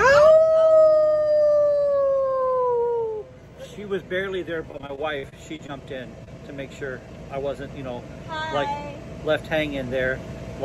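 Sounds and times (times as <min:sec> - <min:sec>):
father and daughter imitating a wolf howl: 0:00.0 - 0:03.3
speech: 0:03.9 - 0:10.6.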